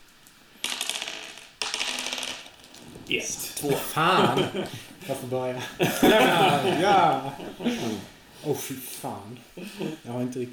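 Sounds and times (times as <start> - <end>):
dice rattling and tumbling across a hard tabletop: 0.6 - 4.0
speech: 3.1 - 10.5
laughter: 3.6 - 8.1, 9.6 - 10.1.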